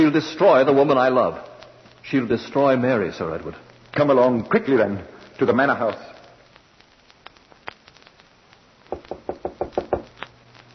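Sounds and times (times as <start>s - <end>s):
speech: 0.0s - 6.1s
firm knocks on a door at a manor house: 8.9s - 10.1s.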